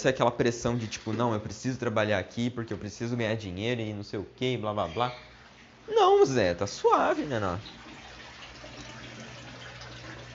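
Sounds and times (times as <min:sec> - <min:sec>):
speech: 0:00.0 - 0:05.3, 0:05.9 - 0:07.8
washing machine running with water: 0:05.9 - 0:10.3.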